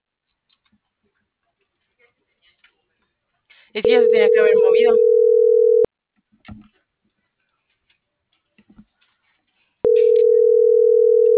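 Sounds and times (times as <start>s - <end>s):
speech: 3.7s - 5.2s
ringback tone of an unanswered phone call: 3.8s - 5.9s, 9.9s - 11.3s.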